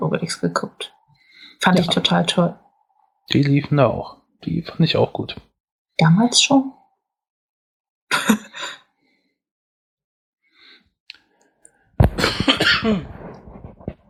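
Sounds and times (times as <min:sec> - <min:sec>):
speech: 0:00.1 - 0:01.0, 0:01.6 - 0:02.6, 0:03.3 - 0:06.8, 0:08.1 - 0:08.8, 0:12.8 - 0:13.2
person coughing harshly with throat noise: 0:12.0 - 0:13.4.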